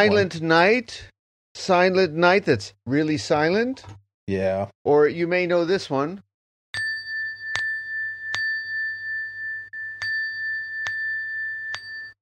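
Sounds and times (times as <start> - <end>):
speech: 0.0 - 6.3
meditation bell struck to start zazen: 6.8 - 12.1.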